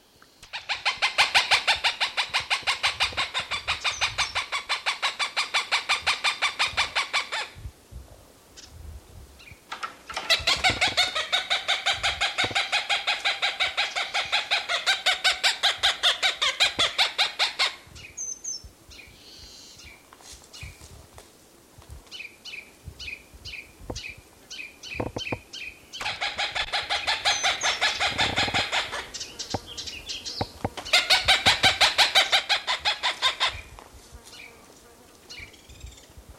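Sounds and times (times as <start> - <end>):
Cooper's hawk calling with harsh cackling notes: 0.4 - 7.6, 10.2 - 17.8, 26.0 - 29.2, 30.8 - 33.7.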